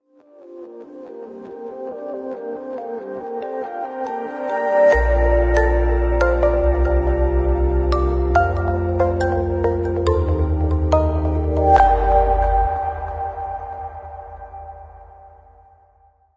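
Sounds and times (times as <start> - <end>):
ambient version of logo music: 3.7 - 16.2.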